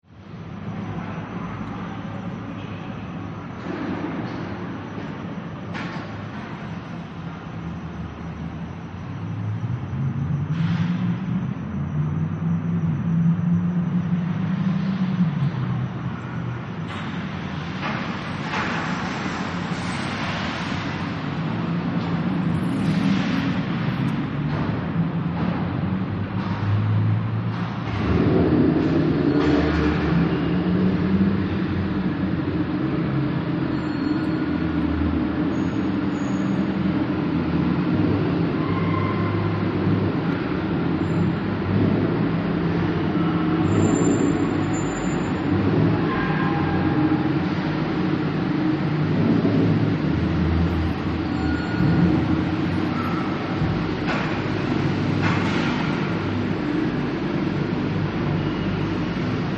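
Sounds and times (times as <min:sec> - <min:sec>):
afternoon ambience at a mall parking lot: 0:00.0 - 0:59.5.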